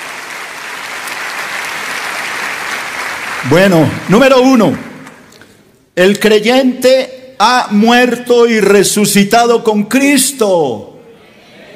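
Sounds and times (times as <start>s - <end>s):
audience applause: 0.0s - 5.2s
speech: 3.4s - 4.9s, 6.0s - 10.9s.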